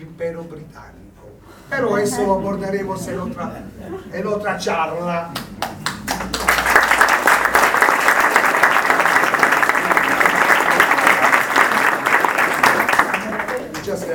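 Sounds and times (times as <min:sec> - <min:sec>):
speech: 0:00.0 - 0:05.5
audience applause at the end of a talk: 0:05.4 - 0:14.1.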